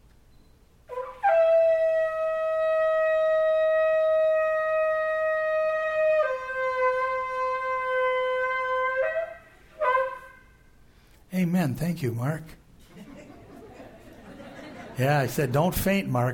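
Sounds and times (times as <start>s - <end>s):
shofar blown as a long loud trumpet call: 0.9s - 10.9s
speech: 11.6s - 12.6s, 15.0s - 16.3s
laughter: 12.8s - 16.1s.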